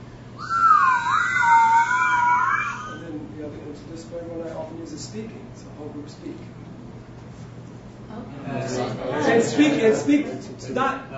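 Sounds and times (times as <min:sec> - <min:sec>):
group whistling sustained tones at several pitches: 0:00.4 - 0:03.0
speech: 0:05.2 - 0:06.8, 0:09.4 - 0:11.1.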